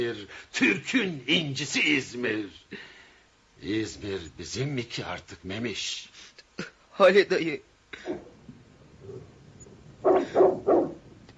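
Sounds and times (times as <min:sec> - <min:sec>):
speech: 0:00.1 - 0:02.9, 0:03.6 - 0:08.3
dog barking: 0:08.0 - 0:08.4, 0:09.0 - 0:11.1.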